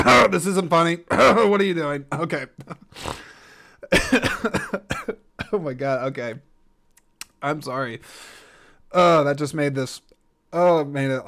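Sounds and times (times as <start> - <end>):
speech: 0.0 - 3.3, 3.9 - 6.5, 7.4 - 11.2
person with a hoarse voice clearing throat: 3.9 - 5.6.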